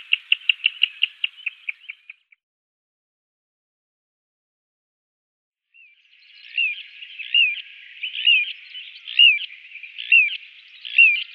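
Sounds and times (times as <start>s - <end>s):
Little ringed plover high downslurred whistled call: 0.0s - 2.3s, 5.8s - 11.3s.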